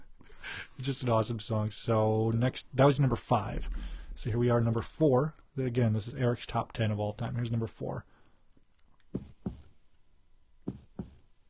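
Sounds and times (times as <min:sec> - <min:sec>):
speech: 0:00.8 - 0:08.1
dull solid knocks on a wooden door: 0:09.2 - 0:09.7, 0:10.7 - 0:11.2.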